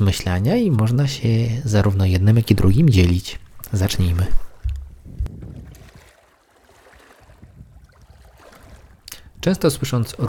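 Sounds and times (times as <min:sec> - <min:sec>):
speech: 0:00.0 - 0:04.4, 0:09.4 - 0:10.2
water and waves washing on the Polish coast: 0:00.0 - 0:10.2
wind buffeting the microphone on the Polish coast: 0:02.5 - 0:06.2, 0:07.0 - 0:10.2.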